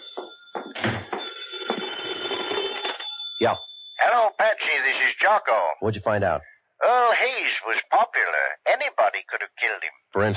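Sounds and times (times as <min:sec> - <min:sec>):
heavy thumps and shuffling knocks: 0:00.0 - 0:01.9
telephone bell ringing: 0:00.0 - 0:04.8
speech: 0:03.4 - 0:10.3.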